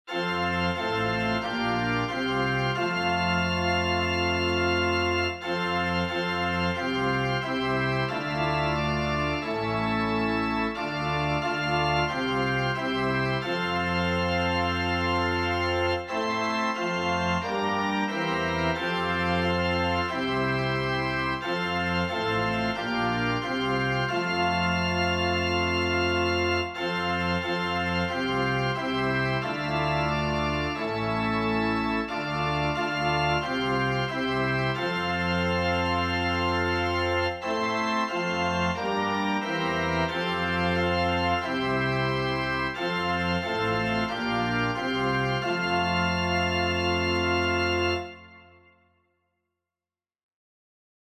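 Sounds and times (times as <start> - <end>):
organ piece: 0.1 - 48.9.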